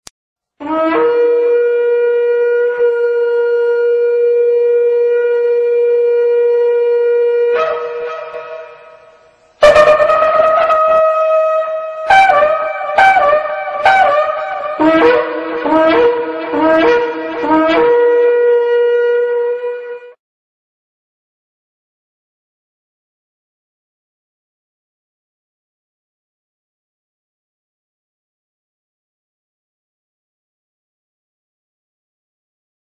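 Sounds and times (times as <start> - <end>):
shofar: 0.6 - 20.2.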